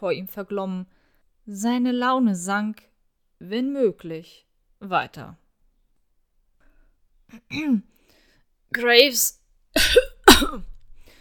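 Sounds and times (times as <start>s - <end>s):
speech: 0.0s - 5.4s, 7.3s - 8.0s, 8.7s - 10.7s
harsh coughs: 9.8s - 10.8s.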